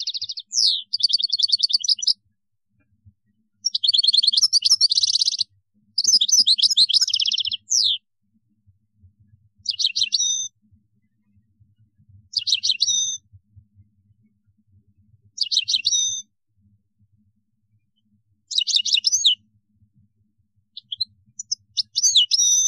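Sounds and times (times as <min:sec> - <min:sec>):
European goldfinch singing twittering phrases and metallic trills: 0:00.0 - 0:02.2, 0:03.6 - 0:08.0, 0:09.7 - 0:10.5, 0:12.4 - 0:13.2, 0:15.4 - 0:16.2, 0:18.5 - 0:19.4, 0:20.8 - 0:22.6.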